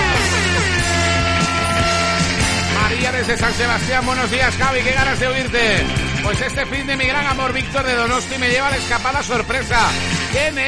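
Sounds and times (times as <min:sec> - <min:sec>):
air horn blast: 0:00.0 - 0:06.2
speech: 0:03.3 - 0:10.6.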